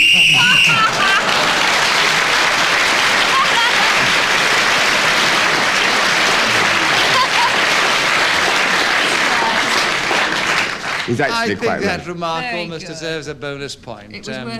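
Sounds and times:
referee's shrill whistle blast signalling time up: 0.0 - 0.9
laughter: 0.0 - 2.2, 3.2 - 10.4, 11.0 - 12.2
audience applause and cheering: 0.0 - 11.8
speech: 11.1 - 14.5.

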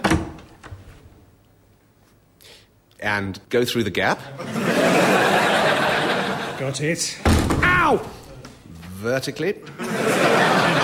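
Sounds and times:
doorknob turning: 0.0 - 0.8
door opening: 0.0 - 1.1, 7.2 - 8.5
speech: 3.0 - 5.4, 6.6 - 8.2, 9.0 - 10.8
laughter: 4.4 - 6.8, 9.6 - 10.8.

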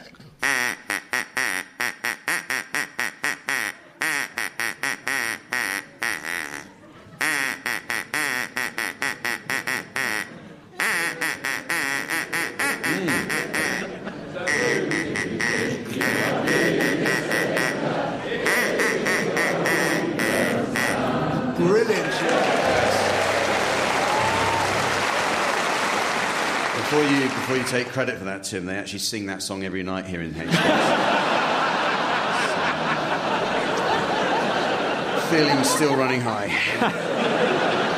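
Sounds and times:
rough noise: 0.0 - 37.9
duck quacking: 0.4 - 21.1
laughter: 6.2 - 7.3, 10.0 - 28.1, 30.4 - 37.9
speech: 27.7 - 31.1, 35.3 - 37.1.

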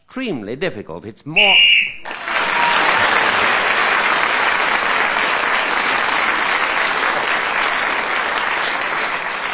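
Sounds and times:
speech: 0.2 - 2.0
large audience applause: 2.0 - 9.5.

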